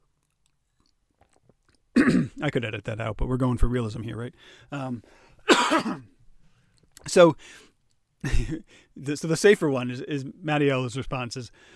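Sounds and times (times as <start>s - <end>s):
person sipping water: 0.0s - 1.9s
soft swallowing: 0.2s - 1.9s
speech: 2.0s - 6.1s, 7.0s - 11.7s.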